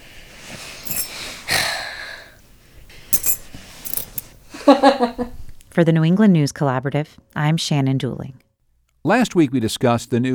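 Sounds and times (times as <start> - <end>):
set of keys jingling: 0.8 - 1.2, 3.1 - 4.3
speech: 4.7 - 8.4, 9.0 - 10.3.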